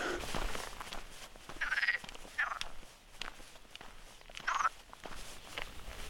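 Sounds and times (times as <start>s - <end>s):
outdoor noise under a slightly threatening sky: 0.0s - 6.0s
rustling footsteps of a walker on the Camino: 0.0s - 6.0s
chorus of frogs croaking in bursts: 1.5s - 2.9s, 4.3s - 4.8s.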